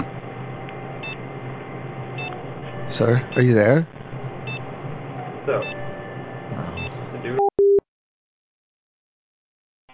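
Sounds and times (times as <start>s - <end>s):
fax machine tones on a phone line: 2.2s - 3.6s, 4.4s - 7.8s
speech: 2.9s - 4.0s, 5.5s - 5.8s, 6.5s - 7.4s.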